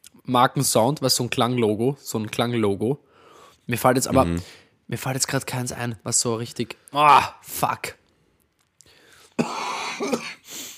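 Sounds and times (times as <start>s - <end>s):
speech: 0.3s - 3.1s, 3.7s - 8.0s, 9.4s - 10.4s
person coughing: 9.4s - 10.5s.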